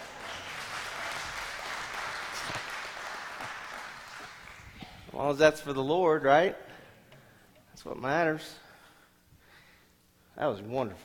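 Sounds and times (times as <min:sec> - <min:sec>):
congregation clapping: 0:00.0 - 0:05.1
speech: 0:05.2 - 0:06.7, 0:07.8 - 0:08.6, 0:10.4 - 0:11.0.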